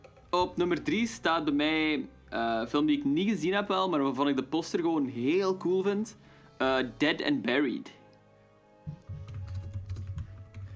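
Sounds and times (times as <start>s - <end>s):
speech: 0.3s - 8.0s
two people typing on computer keyboards: 8.9s - 10.7s.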